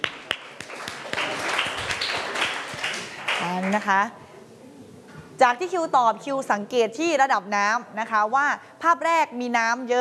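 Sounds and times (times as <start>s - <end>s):
classroom applause from many hands: 0.0s - 3.9s
speech: 3.7s - 4.2s, 5.4s - 9.9s.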